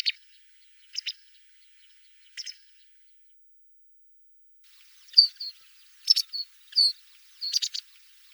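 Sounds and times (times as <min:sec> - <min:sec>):
masked wagtail chirping: 0:04.7 - 0:08.3.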